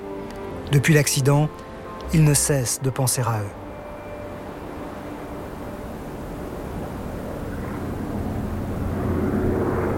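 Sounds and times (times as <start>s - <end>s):
speech: 0.7s - 3.6s
jet airplane engine roaring overhead: 3.6s - 9.9s.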